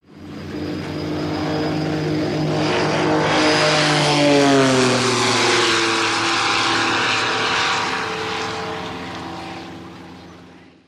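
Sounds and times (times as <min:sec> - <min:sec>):
WW2 P-51 Mustang fighter plane passing by: 0:00.0 - 0:10.8.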